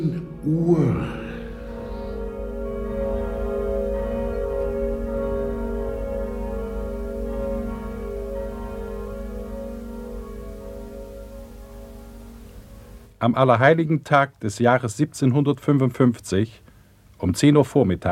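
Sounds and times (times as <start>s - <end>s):
speech: 0.0s - 1.2s, 13.2s - 16.6s, 17.2s - 18.0s
church bells ringing in Lisbon on All Saints' Day: 0.0s - 13.2s.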